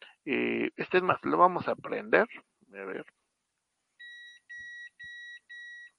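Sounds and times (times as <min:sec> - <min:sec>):
speech: 0:00.2 - 0:03.2
pager beeping: 0:04.0 - 0:05.9.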